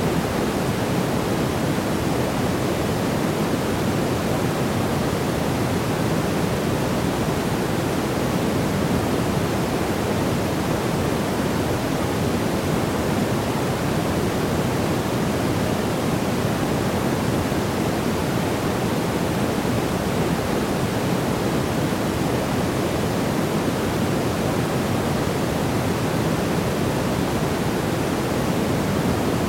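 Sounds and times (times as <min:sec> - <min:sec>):
white noise hiss: 0:00.0 - 0:29.4.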